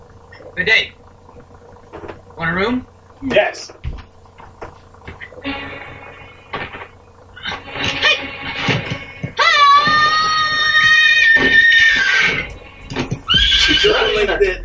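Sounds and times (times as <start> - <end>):
speech: 0.6 - 1.0, 2.4 - 3.8, 5.4 - 5.7, 13.8 - 14.6
person imitating horse whinny: 9.4 - 12.5, 13.3 - 14.3.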